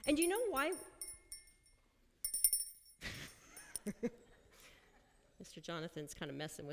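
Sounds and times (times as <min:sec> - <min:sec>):
speech: 0:00.0 - 0:00.9, 0:03.9 - 0:04.2, 0:05.4 - 0:06.7
small hand bell ringing: 0:00.0 - 0:03.0.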